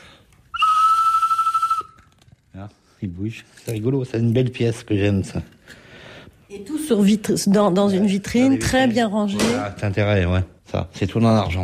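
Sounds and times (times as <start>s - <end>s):
small collectible whistle with moving bird figure blown: 0.5s - 2.2s
speech: 2.6s - 5.8s, 6.5s - 11.6s.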